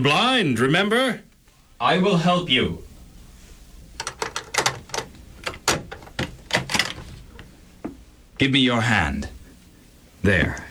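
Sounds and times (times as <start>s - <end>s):
speech: 0.0s - 2.9s, 8.4s - 9.4s, 10.2s - 10.7s
door being opened with wooden clunks, rattles and latch knocks: 4.0s - 7.2s.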